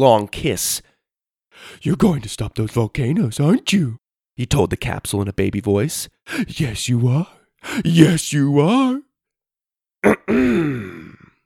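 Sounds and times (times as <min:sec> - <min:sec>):
speech: 0:00.0 - 0:00.9, 0:01.6 - 0:09.1
girl clearing her throat: 0:10.0 - 0:11.3.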